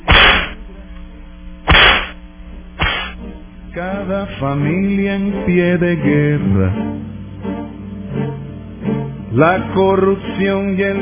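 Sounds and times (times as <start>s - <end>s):
whip lashes cracking: 0.0s - 0.6s, 1.7s - 2.2s, 2.8s - 3.2s
speech: 3.8s - 7.1s, 9.4s - 11.0s.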